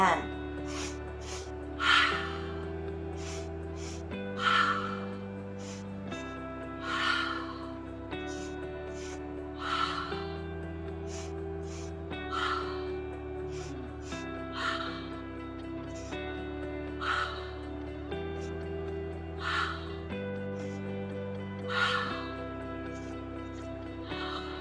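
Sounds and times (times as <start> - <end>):
soft sustained music: 0.0 - 24.5
forceful nasal breaths of a breath-of-fire breathing exercise: 0.6 - 1.6, 3.2 - 4.1, 5.6 - 5.9, 8.3 - 9.3, 11.1 - 12.5.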